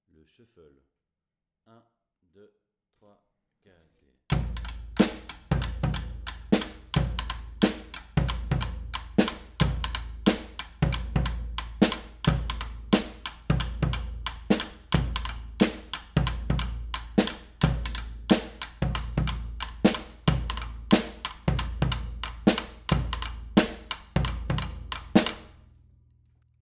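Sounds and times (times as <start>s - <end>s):
batucada shuffle drumming: 4.3s - 25.6s.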